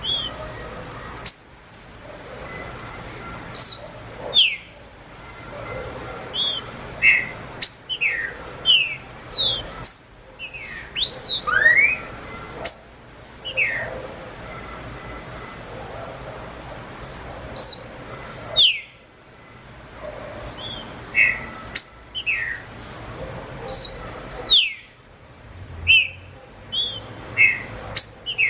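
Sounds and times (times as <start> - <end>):
wild green-winged saltator singing in the bush: 0.0 - 0.4, 6.4 - 12.1, 20.6 - 22.6, 24.6 - 24.9, 25.8 - 28.4
another bird competing: 0.0 - 1.6, 2.4 - 15.6, 17.5 - 19.0, 20.5 - 22.8, 23.6 - 25.0, 25.8 - 28.4.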